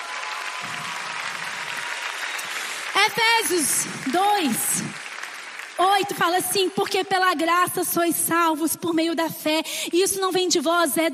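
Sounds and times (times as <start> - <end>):
large audience applauding loudly: 0.0 - 7.0
speech: 3.0 - 5.0, 5.8 - 11.1.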